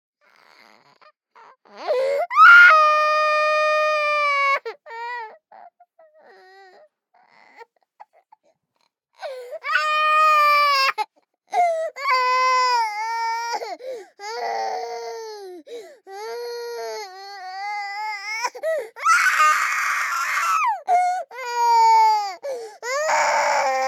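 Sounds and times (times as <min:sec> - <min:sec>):
24-month-old baby girl crying heavily: 0:01.5 - 0:05.3, 0:09.2 - 0:23.8.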